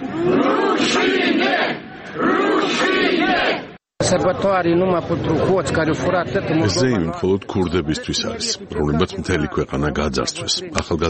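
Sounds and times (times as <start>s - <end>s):
protest crowd chanting at an anti-government rally in Moldova: 0.0s - 3.8s
speech: 0.2s - 11.0s.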